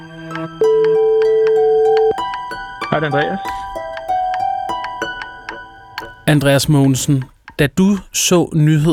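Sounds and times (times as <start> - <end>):
phone call ringing tone on the line: 0.6 - 2.3
speech: 2.9 - 3.7, 6.3 - 8.9.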